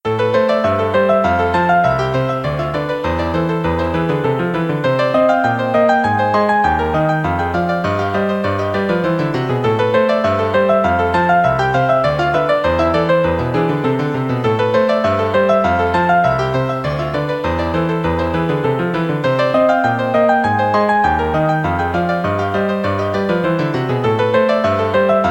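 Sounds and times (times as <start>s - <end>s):
two pianos playing a Romanian dance: 0.0s - 25.3s.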